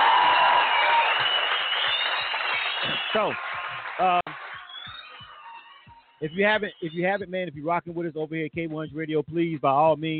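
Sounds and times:
round of applause from many hands clapping: 0.0 - 5.8
speech: 3.1 - 4.3, 6.2 - 10.1.

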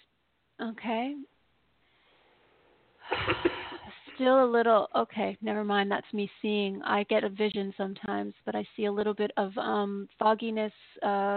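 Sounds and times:
speech: 0.6 - 1.4, 4.2 - 11.3
person clearing throat during an energy healing session: 3.1 - 3.9.

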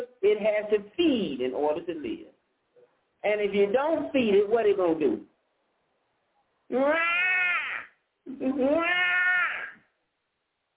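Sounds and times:
speech: 0.3 - 2.3, 3.2 - 5.3, 6.7 - 7.2, 8.3 - 9.0
human voice imitating a hungry cat meowing: 6.7 - 9.8.

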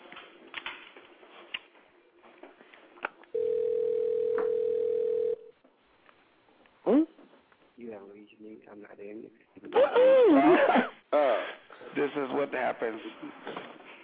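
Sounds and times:
telephone ringing with electronic tone: 3.4 - 5.5
speech: 8.0 - 11.3, 12.0 - 13.6.

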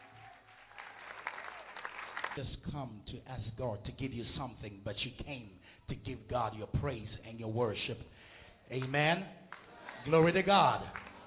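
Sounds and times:
audience clapping in a reverberant room: 0.0 - 2.8, 8.8 - 11.2
speech: 2.4 - 9.4, 10.0 - 11.0.

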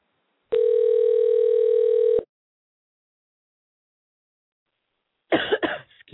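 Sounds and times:
electronic telephone ring tone of a call ringing out: 0.5 - 2.3.

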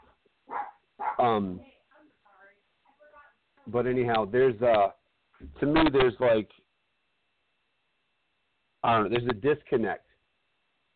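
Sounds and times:
dog barking: 0.0 - 1.4
faint dog yip: 0.5 - 1.3
speech: 1.2 - 1.7, 3.7 - 6.6, 8.8 - 10.0.

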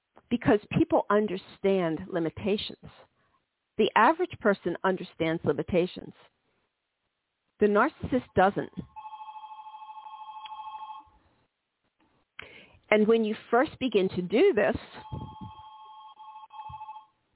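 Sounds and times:
speech: 0.3 - 3.1, 3.8 - 6.4, 7.6 - 8.9, 12.9 - 15.4
telephone ringing loudly with an electronic trill: 8.9 - 11.2, 15.0 - 17.2.

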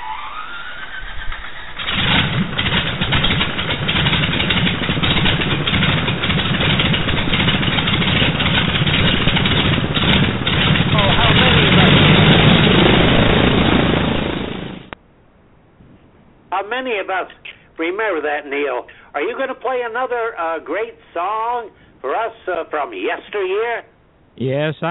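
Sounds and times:
2800 radial piston aircraft engine starting and running: 0.0 - 15.0
speech: 17.1 - 24.9.

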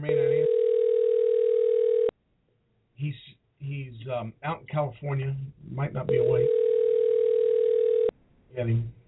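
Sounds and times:
telephone dial tone while placing a call: 0.2 - 2.1, 6.2 - 8.1
speech: 4.1 - 6.6, 8.6 - 9.0.

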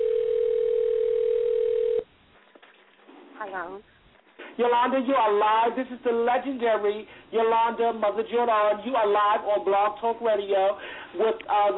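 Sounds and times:
telephone dial tone while dialing a phone number: 0.0 - 2.0
speech: 3.4 - 3.9, 4.6 - 11.7.

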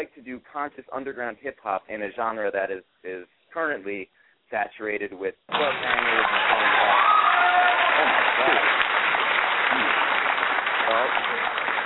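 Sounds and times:
speech: 0.0 - 8.9, 10.9 - 11.4
crowd applause: 5.5 - 11.8
person cheering or shouting: 6.4 - 8.8.

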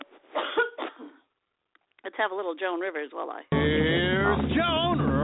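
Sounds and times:
person coughing: 0.4 - 1.2
speech: 2.2 - 5.1.

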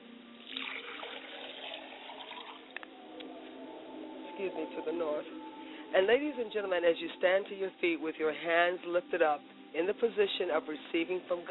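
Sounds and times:
liquid poured as a libation in a splashing stream: 0.4 - 2.8
speech: 4.4 - 11.4.

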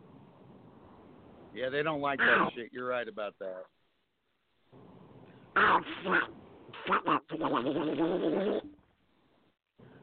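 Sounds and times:
speech: 1.5 - 3.8, 5.6 - 8.8
duck quacking: 2.2 - 2.5, 5.6 - 8.6.

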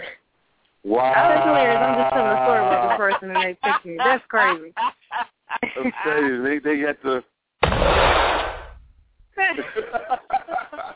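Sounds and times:
speech: 0.9 - 5.0, 5.8 - 8.2, 9.5 - 10.3
laughter: 0.9 - 6.6, 9.4 - 10.9
loud gunshot with a broad booming blast: 7.6 - 9.0.

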